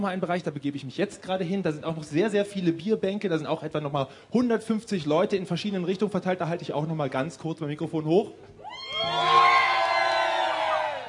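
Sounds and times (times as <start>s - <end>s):
speech: 0.0s - 9.3s
outdoor crowd of many voices cheering and whooping: 8.6s - 11.0s.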